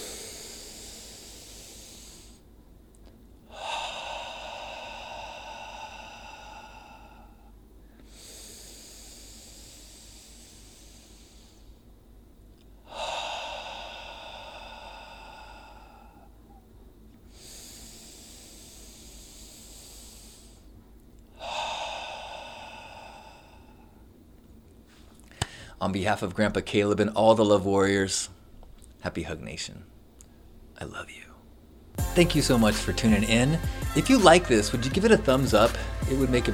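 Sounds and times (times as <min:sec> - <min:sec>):
slow deep breaths in through the nose: 0:00.0 - 0:02.5, 0:03.5 - 0:12.0, 0:12.8 - 0:16.6, 0:17.2 - 0:24.2, 0:24.9 - 0:25.8, 0:32.0 - 0:36.5
speech: 0:25.8 - 0:28.4, 0:29.0 - 0:30.0, 0:30.8 - 0:31.2, 0:32.2 - 0:36.5.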